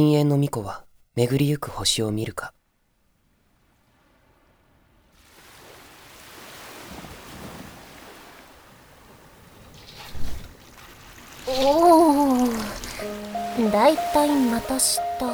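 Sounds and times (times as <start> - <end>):
speech: 0.0 - 2.6, 11.5 - 15.3
ocean waves washing at sea: 3.6 - 15.3
wavering tonal sound: 11.7 - 15.3.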